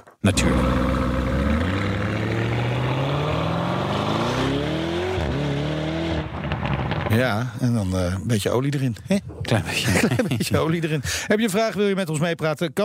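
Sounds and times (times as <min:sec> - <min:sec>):
speech: 0:00.2 - 0:00.6, 0:07.1 - 0:12.8
Lamborghini 650 hp 4-liter Audi RS6 engine revving: 0:00.3 - 0:07.1
laughter: 0:09.5 - 0:11.2.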